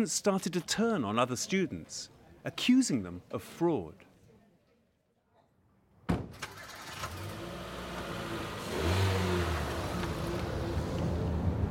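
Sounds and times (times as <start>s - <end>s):
speech: 0.0s - 4.1s
car road rumble: 6.4s - 11.6s
car engine hum while driving: 6.6s - 11.6s.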